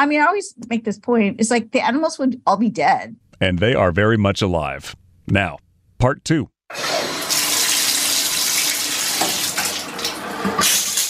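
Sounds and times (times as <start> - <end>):
speech: 0.0 - 7.1
shower water running: 6.7 - 11.0.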